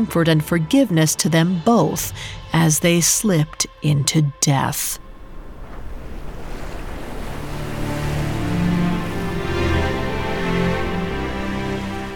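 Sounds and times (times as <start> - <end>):
speech: 0.0 - 5.0
gentle sea waves lapping: 4.9 - 12.1.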